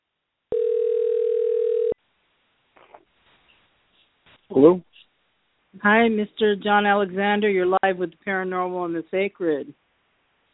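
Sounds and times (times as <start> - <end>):
telephone ringback tone on a call line: 0.5 - 2.0
faint rustle: 2.7 - 5.1
speech: 4.5 - 4.9, 5.8 - 9.8.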